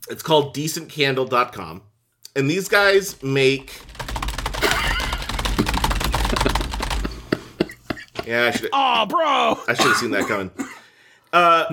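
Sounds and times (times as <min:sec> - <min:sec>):
speech: 0:00.1 - 0:04.0, 0:08.3 - 0:10.6, 0:11.3 - 0:11.7
computer keyboard pounded hard and fast: 0:03.0 - 0:07.9.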